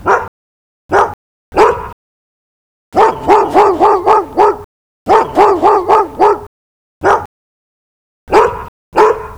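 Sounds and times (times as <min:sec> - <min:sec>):
black Labrador barking: 0:00.0 - 0:00.3, 0:00.9 - 0:02.0, 0:03.0 - 0:07.3, 0:08.3 - 0:09.3.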